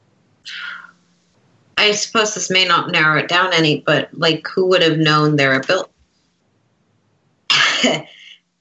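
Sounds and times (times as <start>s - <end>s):
speech: 1.8s - 5.9s, 7.8s - 8.1s
harsh cough: 7.5s - 8.1s.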